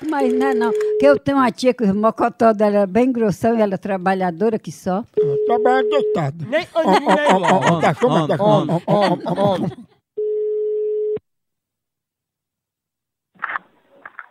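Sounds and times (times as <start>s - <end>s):
telephone ringing for an incoming call: 0.0s - 1.2s, 5.2s - 6.3s, 10.2s - 11.2s
speech: 0.0s - 9.9s
laughter: 6.4s - 10.0s.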